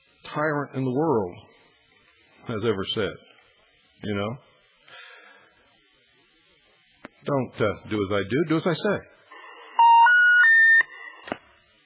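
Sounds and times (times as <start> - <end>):
speech: 0.3 - 1.5, 2.4 - 3.3, 4.0 - 4.5, 7.2 - 9.1
three-note electronic tone of a telephone line left off the hook: 9.3 - 11.0.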